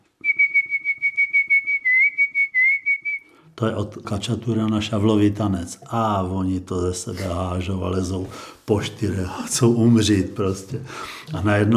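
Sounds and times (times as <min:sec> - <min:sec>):
man whistling a fast dance tune to a crew while sailing out: 0:00.2 - 0:03.4
speech: 0:03.6 - 0:11.7.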